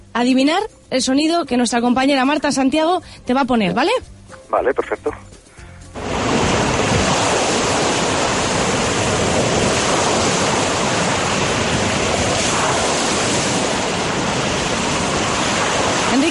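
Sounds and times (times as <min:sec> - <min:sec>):
speech: 0:00.2 - 0:05.4
waves breaking in a harbour or on a beach: 0:06.0 - 0:16.2.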